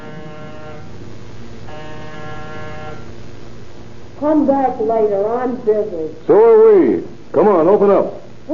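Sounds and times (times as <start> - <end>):
apartment door buzzer with harsh electric drone: 0.0 - 1.0, 1.6 - 3.2
low hum: 0.0 - 8.5
speech: 4.2 - 8.5.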